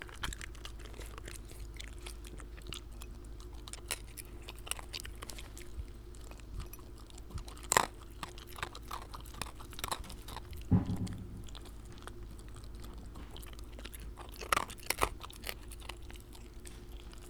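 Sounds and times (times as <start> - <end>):
Shiba Inu chewing food: 0.0 - 17.2
knocks: 10.6 - 13.5
low thump: 10.6 - 13.5.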